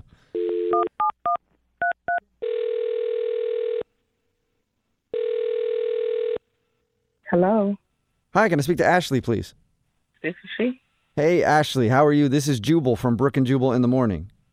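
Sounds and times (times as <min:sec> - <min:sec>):
long steady telephone ringback tones: 0:00.4 - 0:03.8, 0:05.1 - 0:06.4
speech: 0:07.4 - 0:07.8, 0:08.4 - 0:09.6, 0:10.2 - 0:14.3.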